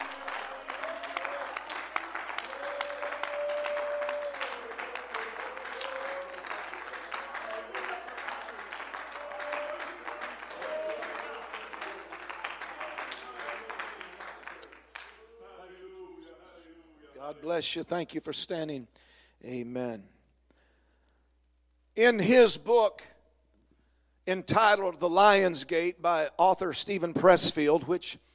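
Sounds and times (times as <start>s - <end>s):
congregation clapping hands during a church service: 0.0s - 17.6s
speech: 17.4s - 20.1s, 22.0s - 23.2s, 24.3s - 28.3s.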